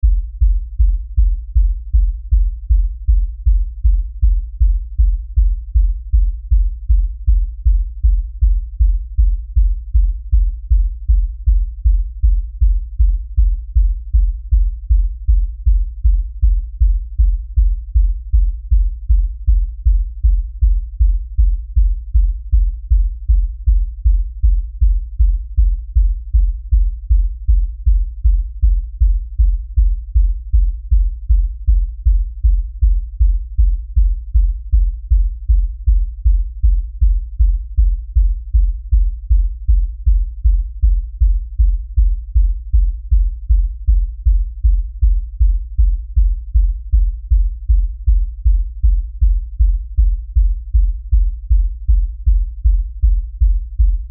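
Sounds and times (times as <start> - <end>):
LFE low bass pounding rhythm beat: 0.0 - 54.0.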